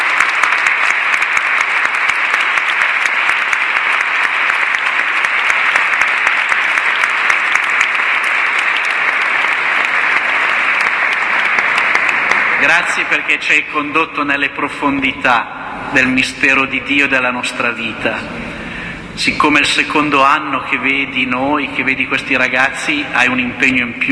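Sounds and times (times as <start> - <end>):
audience applause at a religious gathering: 0.0 - 13.3
speech: 12.7 - 18.4, 19.2 - 24.1.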